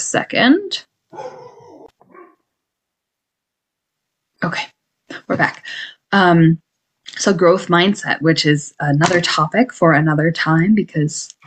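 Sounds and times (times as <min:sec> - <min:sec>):
speech: 0:00.1 - 0:01.4, 0:04.4 - 0:04.7, 0:05.3 - 0:06.6, 0:07.2 - 0:11.4
dog barking: 0:01.1 - 0:02.4.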